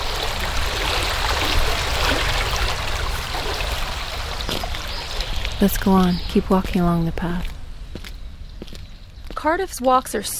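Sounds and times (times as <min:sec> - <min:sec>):
loud broad stream water rushing and burbling: 0:00.0 - 0:07.7
speech: 0:05.6 - 0:07.5, 0:09.4 - 0:10.3.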